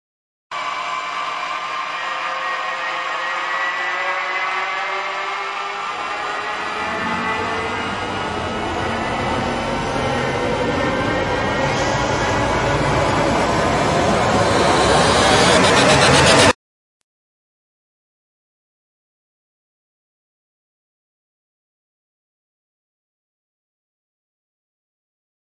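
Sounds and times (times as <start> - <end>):
rising sound: 0.5 - 16.6.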